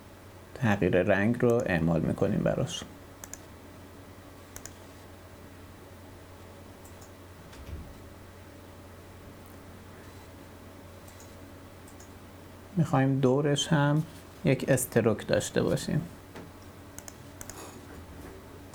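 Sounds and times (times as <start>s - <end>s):
low steady hum: 0.0s - 18.7s
speech: 0.6s - 3.0s, 12.8s - 16.2s
computer mouse clicks during graphic-design work: 3.2s - 3.5s, 4.5s - 4.8s, 17.0s - 17.6s.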